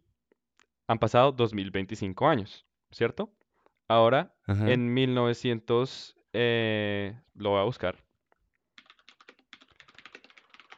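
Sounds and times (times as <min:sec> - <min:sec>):
speech: 0:00.9 - 0:08.0
typing on a computer keyboard: 0:08.7 - 0:10.7.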